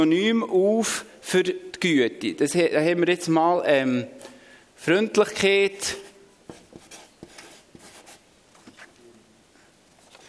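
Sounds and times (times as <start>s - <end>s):
speech: 0.0s - 6.0s
pen tapping on paper: 6.5s - 8.0s
pen scratching on paper while writing by hand: 6.5s - 8.2s.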